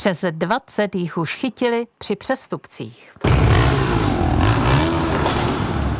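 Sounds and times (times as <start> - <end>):
speech: 0.0 - 4.0
tuned car with modified exhaust revving: 3.2 - 5.9.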